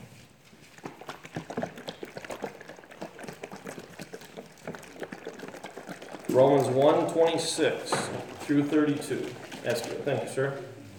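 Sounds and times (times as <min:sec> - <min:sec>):
liquid sloshing as a container is shaken hard and stirred: 0:00.4 - 0:10.6
speech: 0:06.3 - 0:10.7.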